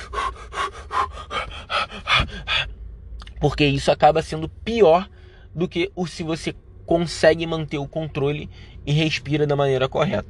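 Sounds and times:
person panting rapidly: 0.0s - 2.8s
speech: 3.4s - 10.2s.

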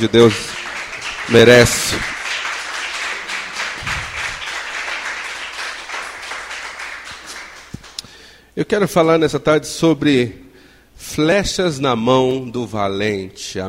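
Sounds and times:
speech: 0.0s - 0.6s, 1.3s - 2.1s, 8.6s - 10.4s, 11.0s - 13.6s
audience applauding: 0.0s - 8.1s.

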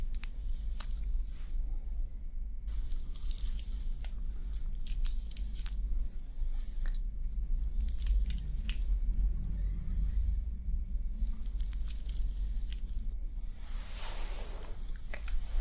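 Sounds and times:
steady low hum: 0.0s - 15.5s
soft brushing and rubbing against skin: 2.7s - 6.8s, 11.4s - 15.5s.

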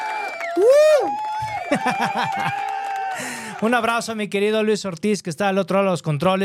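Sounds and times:
lively crowd cheering with excited whoops: 0.0s - 3.7s
crowd of 40 to 60 people clapping: 0.0s - 4.2s
speech: 0.6s - 6.4s
crowd laughter: 1.6s - 2.7s.

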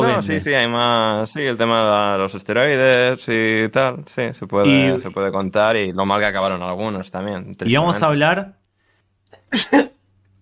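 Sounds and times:
speech: 0.2s - 8.6s, 9.5s - 10.0s
single sharp sneeze with inhaled lead-in: 9.3s - 10.0s.

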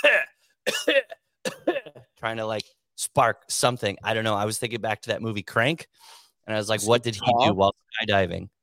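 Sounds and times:
speech: 0.0s - 1.0s, 2.2s - 8.6s
harsh raspy dry coughing: 0.0s - 2.2s.

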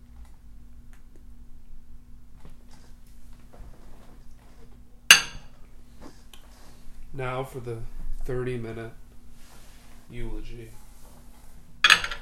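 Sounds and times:
low steady hum: 0.0s - 12.1s
glasses clinking in a toast: 5.1s - 5.6s, 11.8s - 12.1s
speech: 7.2s - 9.0s, 10.1s - 10.8s.

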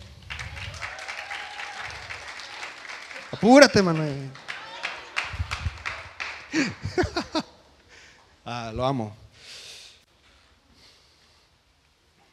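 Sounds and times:
congregation applauding: 0.0s - 7.4s
speech: 3.3s - 4.4s, 6.5s - 7.5s, 8.5s - 9.2s
laughter: 6.4s - 7.6s.

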